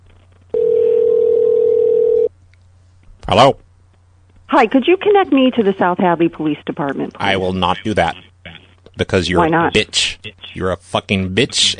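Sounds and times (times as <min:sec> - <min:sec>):
telephone line ringing: 0:00.5 - 0:02.3
speech: 0:03.3 - 0:03.6, 0:04.5 - 0:08.3, 0:09.0 - 0:11.7.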